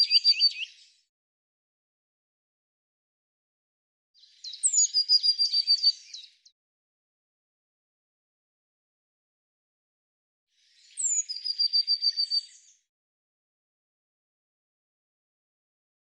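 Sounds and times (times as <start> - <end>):
Eurasian blue tit singing: 0.0 - 1.1, 4.2 - 6.5, 10.6 - 12.9.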